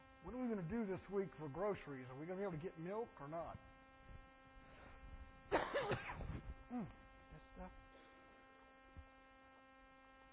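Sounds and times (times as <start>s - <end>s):
speech: 0.2s - 3.7s, 6.7s - 7.8s
person coughing from a throat tickle: 5.5s - 6.9s.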